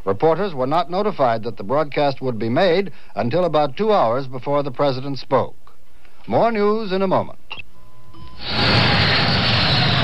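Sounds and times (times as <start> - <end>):
speech: 0.1 - 5.6, 6.3 - 7.4
jet plane taking off: 8.4 - 10.0.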